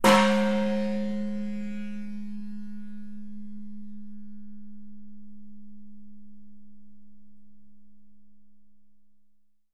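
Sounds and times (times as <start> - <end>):
Khmer temple bell ringing in a bell tower: 0.0 - 6.4.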